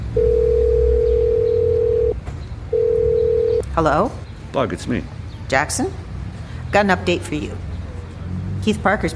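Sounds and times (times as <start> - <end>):
payphone dial tone: 0.2 - 2.1, 2.7 - 3.6
speech: 3.8 - 6.0, 6.7 - 7.7, 8.6 - 9.1.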